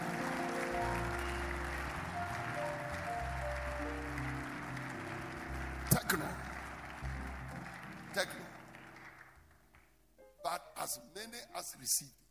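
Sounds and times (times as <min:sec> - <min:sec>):
sustained low musical tones: 0:00.0 - 0:09.3
crowd clapping loudly: 0:00.0 - 0:10.0
preacher speaking: 0:05.9 - 0:06.5, 0:08.1 - 0:08.6, 0:10.4 - 0:12.2
speech: 0:06.1 - 0:06.5, 0:08.2 - 0:08.6, 0:10.8 - 0:12.2.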